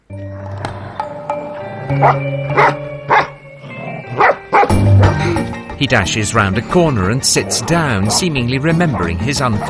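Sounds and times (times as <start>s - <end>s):
speech: 1.9s - 2.8s, 5.8s - 9.6s
collie barking: 2.0s - 3.3s, 4.2s - 5.2s.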